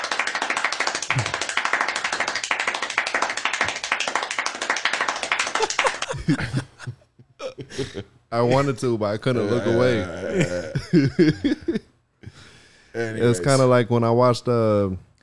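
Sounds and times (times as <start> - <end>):
small group applauding: 0.0 - 6.9
laughter: 5.5 - 8.1, 10.4 - 11.9
speech: 6.3 - 7.0, 7.8 - 11.9, 13.0 - 15.1.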